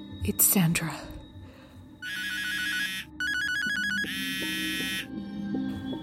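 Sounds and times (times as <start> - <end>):
speech: 0.0 - 1.2
mobile phone bright electronic ringtone: 2.0 - 5.1.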